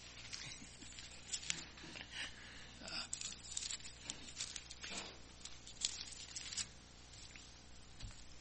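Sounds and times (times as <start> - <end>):
book pages turning: 0.0 - 1.9, 3.1 - 8.3
paper handling scrapes: 0.0 - 2.0, 3.1 - 7.5.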